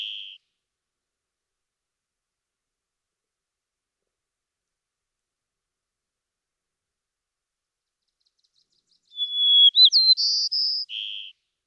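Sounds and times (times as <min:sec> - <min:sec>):
White-crowned sparrow song: 0:00.0 - 0:00.4, 0:07.9 - 0:11.4.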